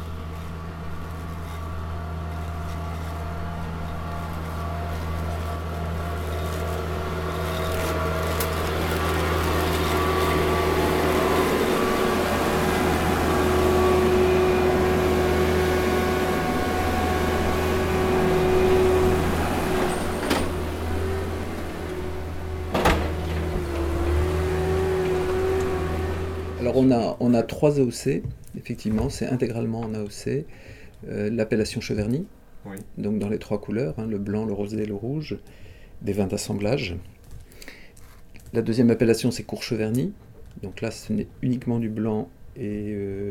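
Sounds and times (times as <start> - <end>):
tractor engine droning while trimming vineyard foliage: 0.0 - 26.9
speech: 26.8 - 37.1, 38.5 - 43.2.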